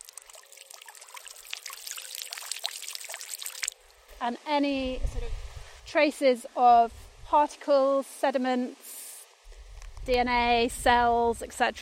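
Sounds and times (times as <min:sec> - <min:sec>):
water pushed through a plastic filter housing with a filter membrane: 0:00.0 - 0:04.1
speech: 0:04.2 - 0:08.9, 0:10.1 - 0:11.8.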